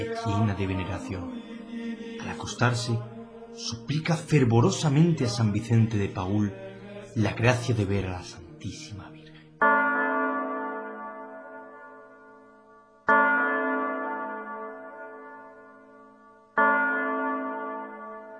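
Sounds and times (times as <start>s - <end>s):
speech: 0.0s - 9.7s
clock bell striking midnight with deep resonant tolls: 9.6s - 18.3s.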